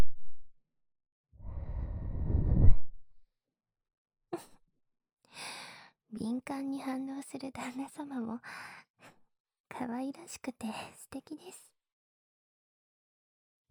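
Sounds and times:
soft breathy blowing onto an ear to cool it: 1.4 - 2.8
speech: 6.1 - 8.8, 9.8 - 11.7.

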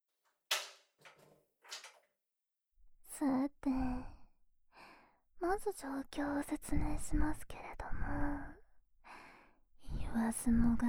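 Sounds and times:
door closing and latching: 0.5 - 2.0
speech: 5.5 - 8.4, 10.3 - 10.8.

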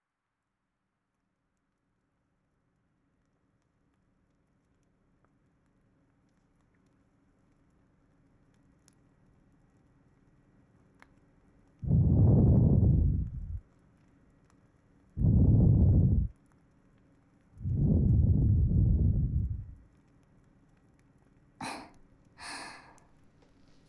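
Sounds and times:
ear cleaning in the right ear: 11.8 - 13.6, 15.2 - 16.3, 17.6 - 19.8
loofah water massage: 11.8 - 13.6, 15.2 - 16.3, 17.6 - 19.8.

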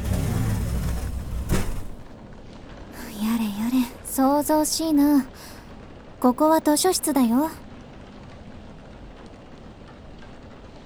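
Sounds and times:
low storm rumbling: 0.0 - 2.2
heavy rain pouring in a storm: 0.0 - 10.8
speech: 4.2 - 5.5, 6.2 - 7.6.

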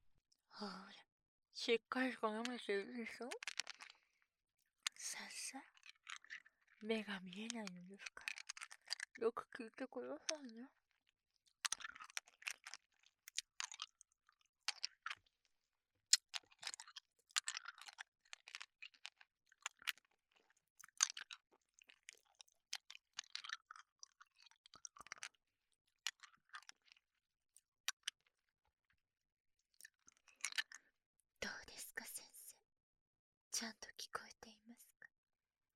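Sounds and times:
speech: 0.6 - 3.5, 6.8 - 8.3, 9.2 - 10.8
candy being chewed: 3.4 - 4.0, 5.6 - 6.5, 8.0 - 9.2, 11.4 - 15.3, 16.1 - 27.2, 27.9 - 28.4, 29.8 - 30.9
quiet whispering: 31.4 - 32.5, 33.6 - 35.0.

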